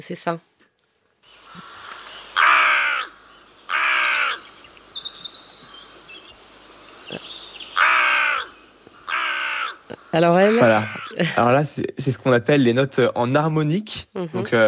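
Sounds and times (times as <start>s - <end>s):
speech: 0.0s - 0.5s, 10.1s - 14.6s
faint birdsong: 1.2s - 11.5s
carrion crow cawing: 1.4s - 5.8s, 7.1s - 11.2s.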